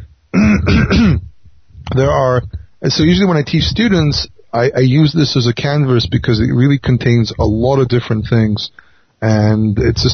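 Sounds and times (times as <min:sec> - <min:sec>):
person clearing throat: 0:00.4 - 0:01.3
speech: 0:00.7 - 0:01.2, 0:02.0 - 0:10.1.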